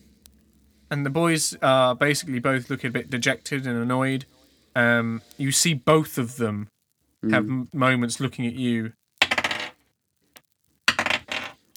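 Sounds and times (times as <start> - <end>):
speech: 0.9 - 9.0
dice rolling on a table: 9.2 - 9.8, 10.9 - 11.6.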